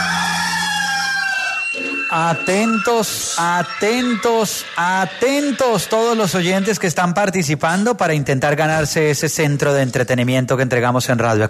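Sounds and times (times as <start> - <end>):
rooster crowing: 0.0 - 2.8
speech: 2.1 - 11.4.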